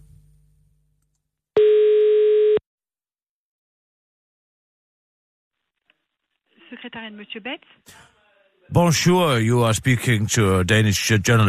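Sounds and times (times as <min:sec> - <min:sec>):
telephone ringing tone on an outgoing call: 0:01.6 - 0:02.6
speech: 0:06.7 - 0:11.4.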